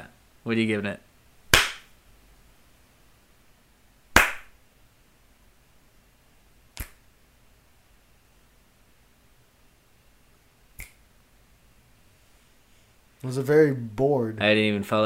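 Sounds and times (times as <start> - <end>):
speech: 0.4 - 1.1, 13.3 - 15.0
sharp hand slaps: 1.5 - 1.9, 4.1 - 4.6, 6.8 - 7.0, 10.8 - 11.0
light finger snaps: 6.8 - 7.0, 10.8 - 11.0.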